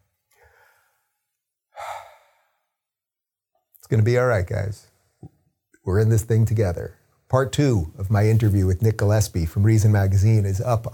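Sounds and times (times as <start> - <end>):
quiet inhale: 0.3 - 2.8
sighing exhale: 1.8 - 2.7
speech: 3.9 - 4.9, 5.8 - 10.9.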